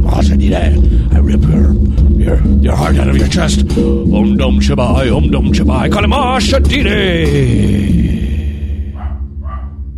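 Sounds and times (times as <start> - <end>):
loud steady low rumble: 0.0 - 9.9
speech: 0.5 - 8.3
dog barking: 9.0 - 9.9.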